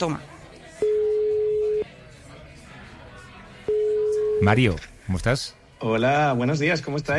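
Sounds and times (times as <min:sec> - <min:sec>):
speech: 0:00.0 - 0:00.3, 0:04.4 - 0:07.1
phone line ringback tone beeps: 0:00.8 - 0:01.8, 0:03.7 - 0:04.6.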